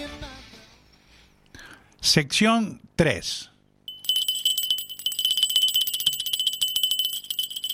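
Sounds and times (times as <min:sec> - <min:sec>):
speech: 0:02.0 - 0:03.5
small hand bell ringing: 0:03.9 - 0:07.7.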